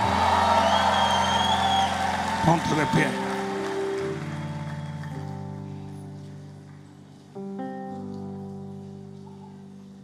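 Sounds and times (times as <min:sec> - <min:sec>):
audience shouting praise together: 0:00.0 - 0:04.8
speech: 0:02.4 - 0:03.2.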